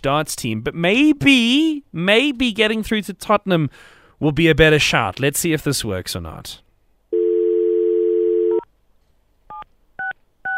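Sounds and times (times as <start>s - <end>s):
speech: 0.0s - 6.6s
telephone dial tone: 7.2s - 8.6s.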